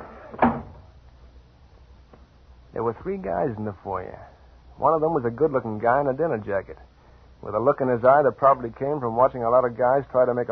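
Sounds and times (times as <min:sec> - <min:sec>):
front door of a brownstone gambling house shutting with a solid thud: 0:00.0 - 0:00.9
speech: 0:02.8 - 0:10.5.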